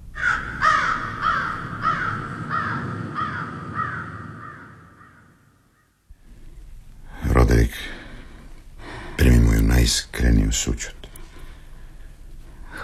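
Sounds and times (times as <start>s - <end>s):
raven croaking: 0.0s - 6.0s
speech: 9.8s - 11.0s.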